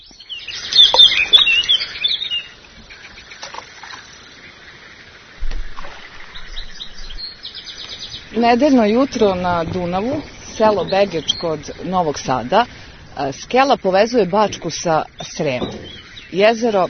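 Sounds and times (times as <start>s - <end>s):
small birds chirping by the Danube at Begeč near Novi Sad: 0.0s - 4.8s, 5.4s - 16.8s
faint low rumbling: 6.3s - 16.8s
speech: 8.4s - 16.8s.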